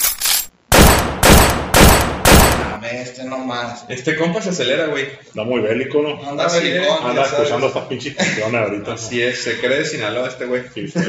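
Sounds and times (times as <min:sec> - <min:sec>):
loud gunshots: 0:00.7 - 0:02.8
speech: 0:02.9 - 0:11.0.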